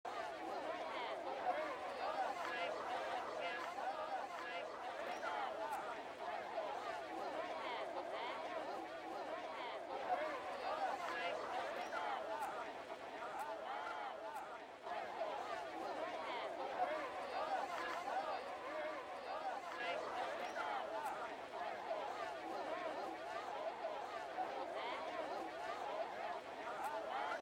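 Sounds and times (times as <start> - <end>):
ambient chatter: 0.1 - 27.4
laughter: 0.1 - 27.4.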